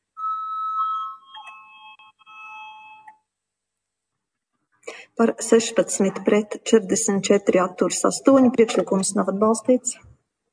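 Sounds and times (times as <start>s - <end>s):
electronic voting bell ringing in a parliament chamber: 0.0s - 3.3s
speech: 5.2s - 10.1s.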